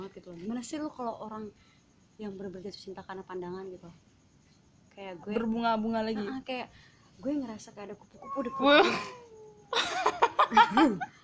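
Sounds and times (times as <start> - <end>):
speech: 0.1 - 4.1, 5.0 - 11.2
cat meowing insistently: 8.2 - 9.6
laughter: 9.7 - 11.1.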